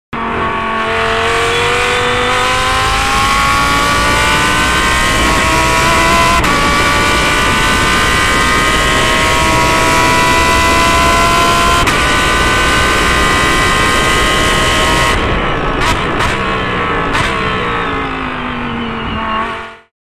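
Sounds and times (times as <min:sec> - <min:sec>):
Audi R8 LMS GT3 race car engine at full speed: 0:00.1 - 0:19.9.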